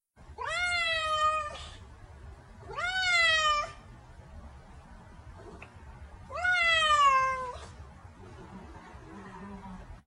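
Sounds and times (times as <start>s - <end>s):
cat meowing: 0.4s - 1.8s, 2.6s - 3.8s, 6.3s - 7.7s.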